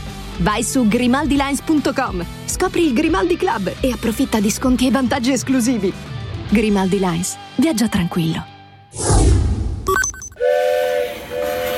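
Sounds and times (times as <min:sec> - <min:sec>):
speech: 0:00.4 - 0:09.1
train whistle blasts: 0:10.4 - 0:11.7.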